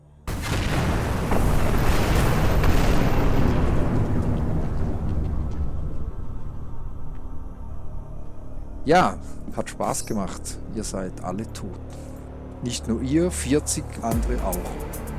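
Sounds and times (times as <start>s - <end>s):
massive rumbling explosion of a spaceship crashing onto a gas giant: 0.3s - 6.4s
debris-filled rumble: 0.3s - 7.1s
speech: 8.9s - 15.0s.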